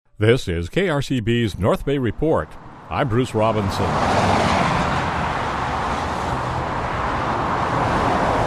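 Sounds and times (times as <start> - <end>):
speech: 0.2 - 4.4
highway traffic rushing past with tire and engine noise: 0.8 - 8.4.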